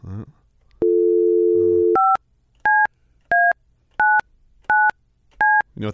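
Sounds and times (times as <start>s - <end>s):
telephone dial tone: 0.8s - 2.2s
touch-tone beeps of a phone being dialed: 0.8s - 5.7s
speech: 5.8s - 5.9s.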